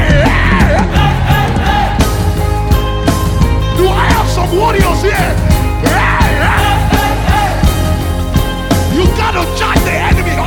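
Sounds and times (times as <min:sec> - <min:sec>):
large crowd shouting a phrase in unison: 0:00.0 - 0:02.6, 0:03.8 - 0:08.2
musical backing: 0:00.0 - 0:10.4.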